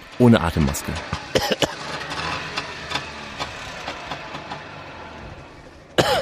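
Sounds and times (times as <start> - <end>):
1976 Trabant sedan two-stroke engine idling during a driving lesson on Rügen Germany: 0.0 - 6.1
speech: 0.2 - 1.7
short coughs: 1.4 - 1.8, 6.0 - 6.2.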